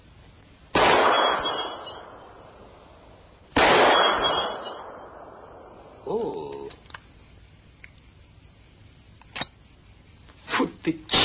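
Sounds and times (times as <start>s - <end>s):
gunshots: 0.8s - 2.6s, 3.5s - 5.7s
speech: 10.9s - 11.2s.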